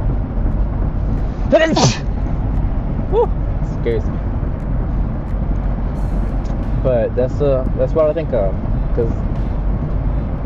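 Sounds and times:
steady low rumble: 0:00.0 - 0:10.4
speech: 0:01.5 - 0:02.1, 0:03.1 - 0:04.3, 0:06.8 - 0:09.5
sneeze: 0:01.8 - 0:02.0.

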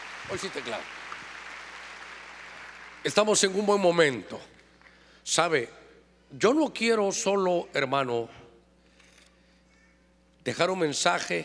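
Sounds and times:
crowd clapping loudly: 0:00.0 - 0:03.5
speech: 0:00.3 - 0:01.0, 0:03.0 - 0:04.6, 0:05.2 - 0:08.4, 0:10.4 - 0:11.4.

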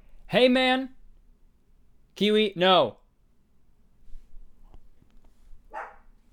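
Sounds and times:
speech: 0:00.3 - 0:01.0, 0:02.2 - 0:03.0
dog barking: 0:05.7 - 0:06.1.

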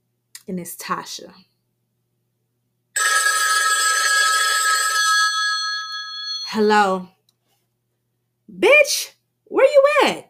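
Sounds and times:
speech: 0:00.5 - 0:01.5, 0:06.5 - 0:07.2, 0:08.5 - 0:10.2
telephone ringing with a bell-like trill: 0:03.0 - 0:06.6.

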